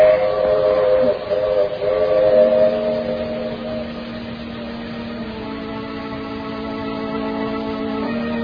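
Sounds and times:
train whistle blowing in long sliding tones: 0.0 - 8.4.

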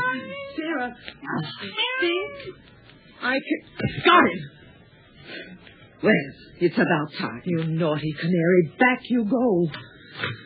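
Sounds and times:
cat yowling: 0.0 - 2.6
speech: 0.7 - 4.6, 5.3 - 10.4.

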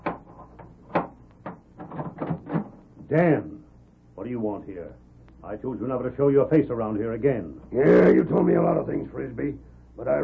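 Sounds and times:
dull knocks and rattling wooden thuds of a door: 0.0 - 2.8
house door being opened: 0.0 - 2.8
speech: 3.1 - 3.5, 4.2 - 10.2.

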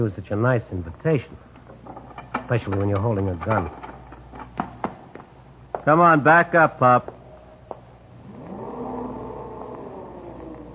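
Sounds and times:
speech: 0.0 - 1.5, 2.5 - 3.8, 5.8 - 7.2
elevator motor whirring hum: 8.1 - 10.7.

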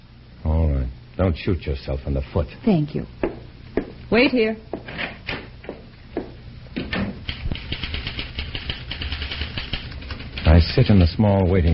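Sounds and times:
speech: 1.2 - 3.2, 4.1 - 5.1, 10.7 - 11.7
mechanical typewriter keystrokes clattering: 7.3 - 11.7.

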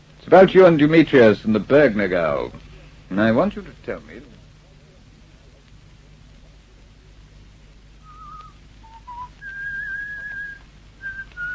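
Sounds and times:
faint hiss: 0.0 - 11.5
speech: 0.2 - 4.3
man whistling a tune: 8.0 - 11.5.

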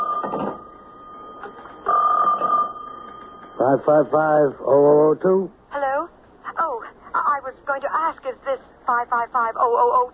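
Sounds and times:
special telephone line ringing in short bursts: 0.0 - 4.7
faint steady electrical hum: 0.0 - 10.1
speech: 3.6 - 5.6, 8.3 - 10.1.

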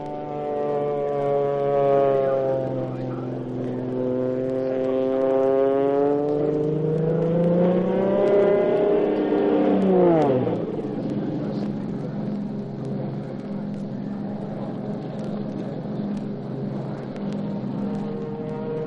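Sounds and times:
stunt propeller plane engine roaring in a dive: 0.0 - 18.8.

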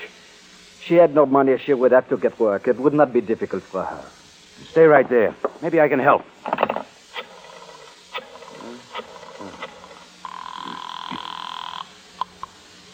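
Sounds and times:
speech: 0.9 - 6.7
telephone ringing: 7.2 - 12.4.

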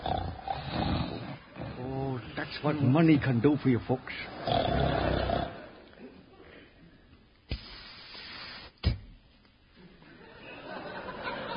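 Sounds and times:
loud rasping snore with a deep growling rumble: 0.0 - 2.4, 4.4 - 5.7
speech: 2.5 - 5.0
laughter: 2.7 - 6.9, 9.8 - 11.5.

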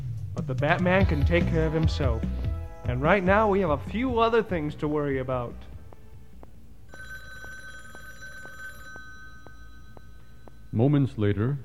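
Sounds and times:
speech: 0.4 - 5.7, 10.8 - 11.6
telephone bell ringing with a metallic trill: 6.9 - 11.1.

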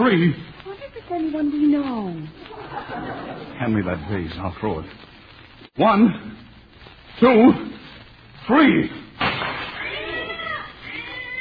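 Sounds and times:
speech: 0.0 - 0.5, 1.3 - 5.1, 5.8 - 6.4, 7.2 - 7.8, 8.5 - 9.0
hiss: 0.0 - 11.4
laughter: 2.4 - 4.2
cat meowing: 9.8 - 11.4.

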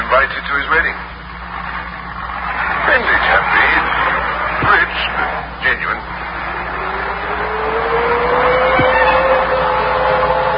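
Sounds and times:
road noise: 0.0 - 10.5
speech: 0.2 - 1.1
car engine humming: 1.0 - 10.5
brief thump: 8.8 - 9.2.

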